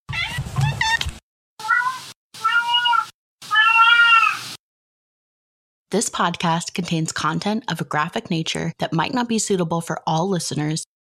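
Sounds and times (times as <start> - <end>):
cat meowing: 0.1 - 1.0, 1.6 - 4.4
speech: 6.0 - 10.9.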